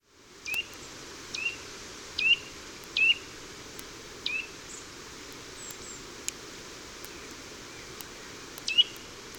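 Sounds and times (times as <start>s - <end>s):
steady background hiss: 0.0s - 9.3s
bird giving short thin upward-slurred chirps: 0.4s - 1.6s, 2.2s - 3.4s, 4.2s - 4.9s, 5.5s - 6.1s, 7.0s - 9.1s
faint clicks: 5.3s - 6.4s, 7.0s - 9.3s.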